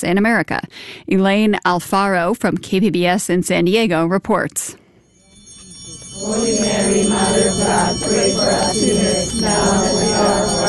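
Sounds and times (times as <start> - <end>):
speech: 0.0 - 4.8, 6.2 - 10.6
church bells ringing: 5.2 - 10.6.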